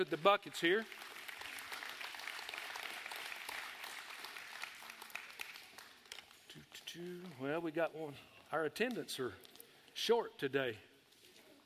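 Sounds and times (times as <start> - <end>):
speech: 0.0 - 1.0, 6.9 - 10.9
crowd applause: 0.0 - 6.0.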